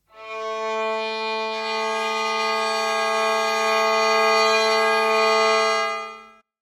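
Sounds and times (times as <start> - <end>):
violin: 0.0 - 6.4.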